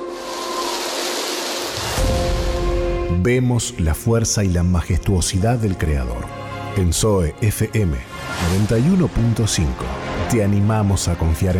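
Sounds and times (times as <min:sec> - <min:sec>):
heavy rain: 0:00.0 - 0:02.9
speech: 0:03.1 - 0:11.5.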